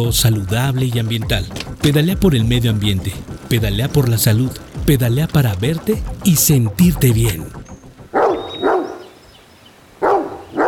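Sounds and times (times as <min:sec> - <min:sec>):
speech: 0:00.0 - 0:07.7
dog barking: 0:08.1 - 0:09.1, 0:10.0 - 0:10.6.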